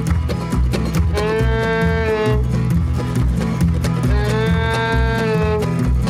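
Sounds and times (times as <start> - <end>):
loud busy rhythmic clatter: 0.0 - 6.0
voice imitating an old cow mooing: 1.1 - 2.4, 4.1 - 5.7.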